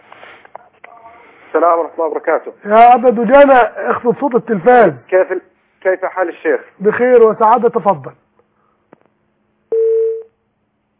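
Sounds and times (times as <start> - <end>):
speech: 1.5 - 8.2
telephone line tone after a call from Algeria disconnects: 9.7 - 10.3.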